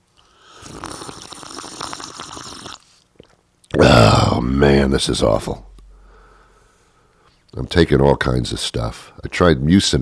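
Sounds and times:
wet slurping sip of water: 0.2 - 3.4
speech: 4.5 - 5.7, 7.7 - 10.0.

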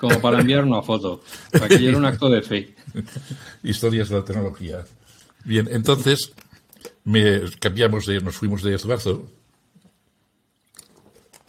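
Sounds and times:
laughter: 0.0 - 0.6, 1.5 - 2.2, 2.8 - 3.6
speech: 0.0 - 6.4, 7.0 - 9.4
person sipping and swallowing water: 9.8 - 11.4
brief louder slurp: 10.6 - 11.4.

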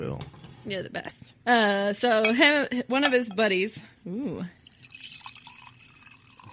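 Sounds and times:
speech: 0.0 - 4.7
wine pouring into a glass: 4.6 - 6.5.

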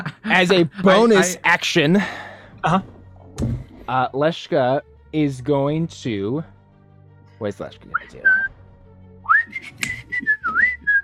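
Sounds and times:
speech: 0.3 - 6.5, 7.4 - 8.4
person whistling a short song melody: 7.9 - 8.6, 9.2 - 11.0.

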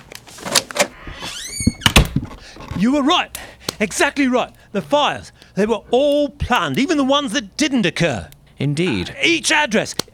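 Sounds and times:
door hinge creaking: 1.0 - 2.9
door latch clicks: 1.6 - 2.3
speech: 2.8 - 10.1.

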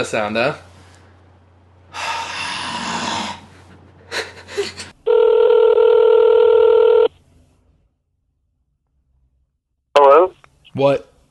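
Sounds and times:
speech: 0.0 - 0.7, 10.8 - 11.1
steady electronic telephone tone as a call is placed: 5.1 - 7.1.

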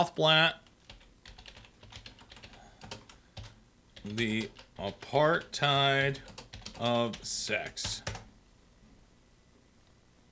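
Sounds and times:
speech: 0.0 - 0.6, 4.0 - 8.2
typing on a computer keyboard: 0.6 - 8.3.

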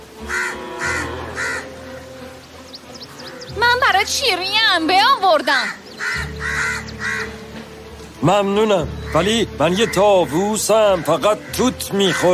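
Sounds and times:
crow cawing: 0.2 - 1.8, 5.4 - 7.5, 9.0 - 12.3
speech: 4.0 - 6.2, 8.2 - 12.3.

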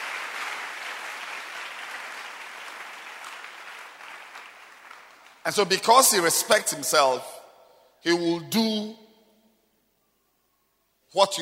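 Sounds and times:
church congregation clapping hands: 0.0 - 7.0
speech: 5.5 - 7.4, 8.0 - 9.0, 11.1 - 11.4.

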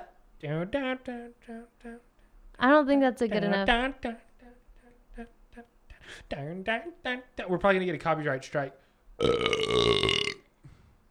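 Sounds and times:
speech: 0.4 - 4.3, 5.2 - 10.2
burp: 9.2 - 10.5.

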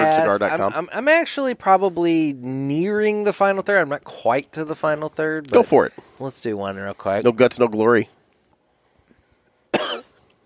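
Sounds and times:
speech: 0.4 - 8.2
harsh raspy cough after cigar smoke retrohale: 9.7 - 10.2.

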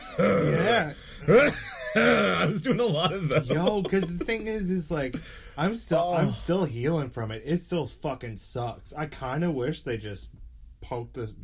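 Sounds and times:
voice imitating an old man's hacking cough: 0.0 - 2.7
speech: 0.2 - 11.4.

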